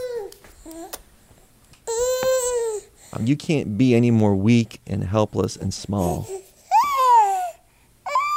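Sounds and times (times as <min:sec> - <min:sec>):
newborn baby making short babbling coos: 0:00.0 - 0:01.0, 0:01.9 - 0:02.9, 0:06.1 - 0:08.3
speech: 0:03.2 - 0:06.4.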